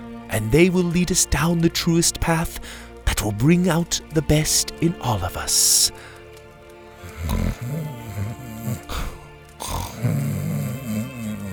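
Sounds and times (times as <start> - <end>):
speech: 0.3 - 6.2, 7.2 - 7.8
person snoring: 7.0 - 11.5.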